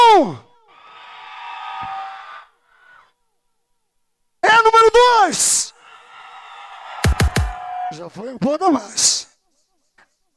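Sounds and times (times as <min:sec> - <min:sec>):
speech: 0:00.2 - 0:00.4, 0:08.0 - 0:09.3
crowd shouting in support of a contestant in a vote: 0:00.7 - 0:02.6, 0:05.6 - 0:08.2.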